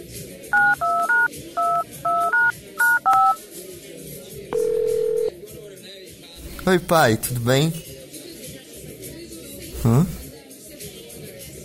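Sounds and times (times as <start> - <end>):
telephone keypad dialing tones placing a call: 0.6 - 3.4, 4.6 - 5.3
steady telephone tone: 4.6 - 5.3
speech: 6.6 - 7.9, 9.8 - 10.2.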